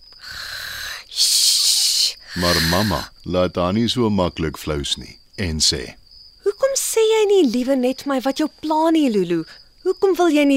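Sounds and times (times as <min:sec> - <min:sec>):
girl fake snoring: 0:00.2 - 0:01.1, 0:02.3 - 0:03.1
speech: 0:02.4 - 0:06.0, 0:07.0 - 0:10.5.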